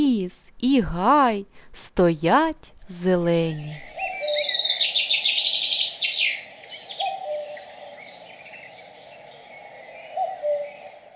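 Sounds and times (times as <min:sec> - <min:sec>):
speech: 0:00.2 - 0:04.0
busy chorus of higher bird chirps and trills outdoors: 0:03.4 - 0:11.1
common cuckoo calling with soft low two-note hoots: 0:03.5 - 0:11.1.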